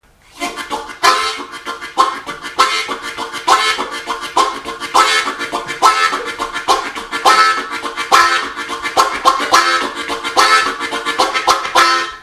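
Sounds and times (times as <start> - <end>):
harmonica playing: 0.3 - 12.2.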